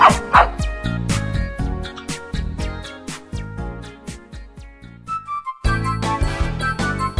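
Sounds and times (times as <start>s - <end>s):
dog barking and yipping: 0.0s - 0.6s
musical backing: 0.0s - 7.1s.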